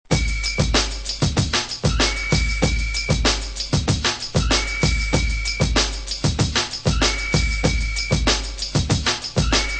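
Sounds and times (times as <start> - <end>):
drum loops: 0.0 - 9.7.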